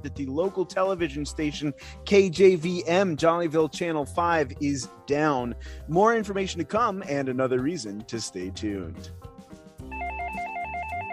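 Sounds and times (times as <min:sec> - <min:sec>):
speech: 0:00.0 - 0:09.3
telephone ringing with a warbling electronic trill: 0:09.9 - 0:11.1.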